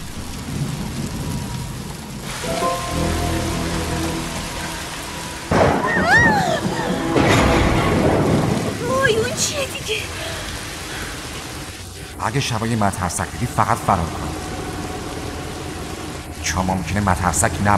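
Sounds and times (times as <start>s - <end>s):
low thunder rumbling: 0.0s - 17.7s
rain falling in a dense hissing downpour: 0.0s - 17.7s
eerie sustained tones: 1.0s - 8.8s, 12.0s - 17.7s
speech: 12.2s - 14.4s, 16.6s - 17.7s.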